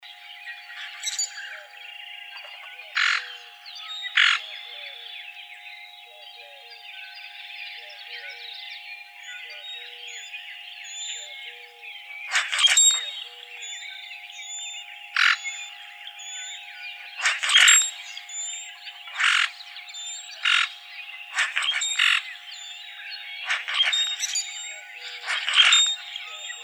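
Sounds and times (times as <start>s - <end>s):
common grackle calling: 0.6s - 26.6s.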